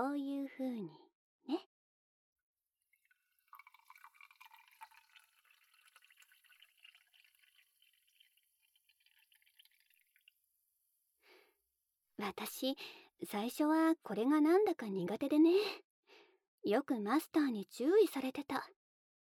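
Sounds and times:
speech: 0.0s - 1.6s, 12.3s - 15.8s, 16.6s - 18.8s
fizzy soda water poured into a glass over ice for a gin fizz: 2.9s - 10.3s.

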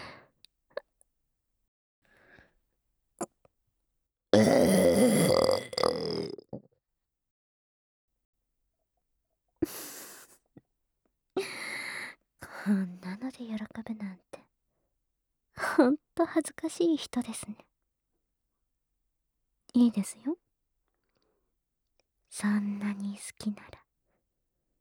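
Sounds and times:
person burping: 4.4s - 6.6s
speech: 15.8s - 17.6s, 19.8s - 20.4s, 22.4s - 23.8s.

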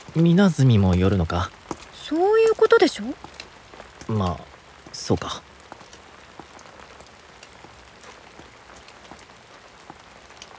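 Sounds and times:
steady rain pattering on a surface: 0.0s - 10.5s
speech: 0.2s - 3.3s, 4.1s - 5.5s.

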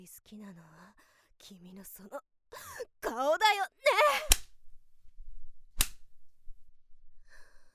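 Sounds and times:
speech: 0.0s - 3.8s
whip crack: 5.8s - 6.0s.

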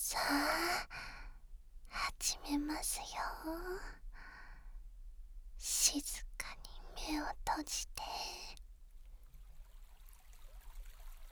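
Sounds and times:
babbling brook water gurgling over stones: 0.0s - 1.2s, 1.9s - 4.0s, 5.6s - 8.6s
speech: 2.2s - 4.0s, 5.6s - 8.3s.

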